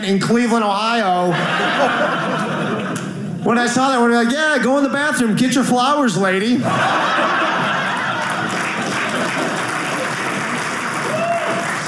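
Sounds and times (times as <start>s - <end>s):
speech: 0.0s - 7.7s
laughter: 1.2s - 3.4s, 6.6s - 11.4s
audience applause: 7.0s - 11.8s.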